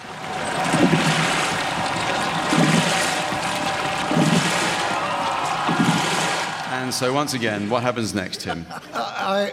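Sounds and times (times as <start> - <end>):
rhythmic surge of rowing boat oars pulling through water: 0.0 - 6.7
water rushing on a river: 0.0 - 7.6
speech: 6.8 - 9.5
laughter: 8.2 - 9.5.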